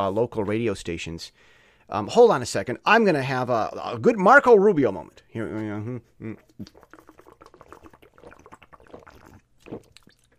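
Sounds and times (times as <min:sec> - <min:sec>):
speech: 0:00.0 - 0:07.0
person drinking water with wet gulps and slurps: 0:05.8 - 0:10.3.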